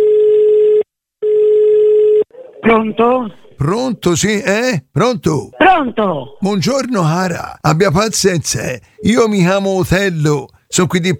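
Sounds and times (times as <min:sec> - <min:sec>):
telephone ringing tone as a call is placed: 0:00.0 - 0:02.3
speech: 0:02.7 - 0:11.1.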